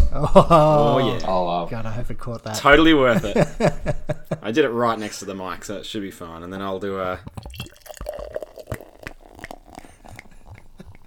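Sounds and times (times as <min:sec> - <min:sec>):
laughter: 0:00.0 - 0:01.2, 0:02.7 - 0:04.6
speech: 0:00.2 - 0:07.8
Belgian beer pouring into a glass, splashing and glugging: 0:07.2 - 0:11.0.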